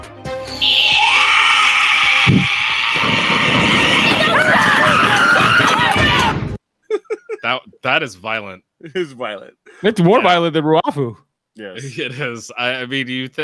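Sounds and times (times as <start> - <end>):
woman's long shrill blood-curdling scream: 0.5 - 6.4
speech: 7.8 - 13.4.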